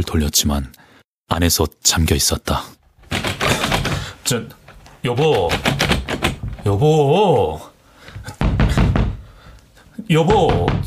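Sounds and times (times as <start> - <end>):
speech: 0.0 - 3.3, 4.3 - 5.8, 6.7 - 8.4, 10.1 - 10.8
knocking on a wooden door: 3.0 - 4.1, 5.2 - 6.7, 8.4 - 9.3, 10.3 - 10.8.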